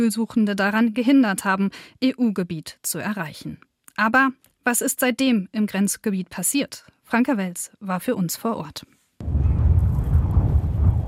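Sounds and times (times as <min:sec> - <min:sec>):
speech: 0:00.0 - 0:09.4
strong wind roaring at the border fence between Melilla and Morocco: 0:09.2 - 0:11.0.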